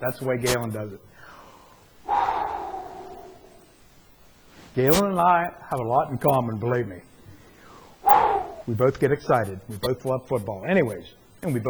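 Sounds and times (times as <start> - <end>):
speech: 0.0 - 1.3, 4.8 - 7.1, 8.7 - 11.6
single deep breath: 1.1 - 3.9, 7.3 - 8.7.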